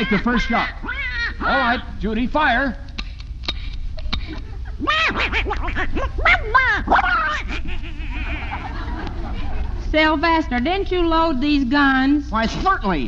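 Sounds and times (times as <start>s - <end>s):
laughter: 0.0s - 0.7s, 4.0s - 9.9s
speech: 0.0s - 2.8s, 4.3s - 8.7s, 9.9s - 13.0s
steady hiss: 0.0s - 13.0s
sharp clicks: 2.8s - 4.4s
duck quacking as it flies overhead: 4.9s - 9.0s.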